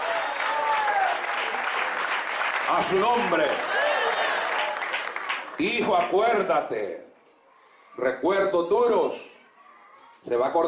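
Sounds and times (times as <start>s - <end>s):
audience applause at a worship service: 0.0s - 6.4s
speech: 2.7s - 3.8s, 5.6s - 7.1s, 8.0s - 9.3s, 10.2s - 10.6s.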